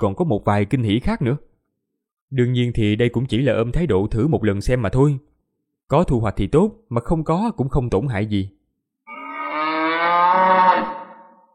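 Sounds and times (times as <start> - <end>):
speech: 0.0 - 1.5, 2.3 - 5.3, 5.9 - 8.6
ox bellowing: 9.1 - 11.5.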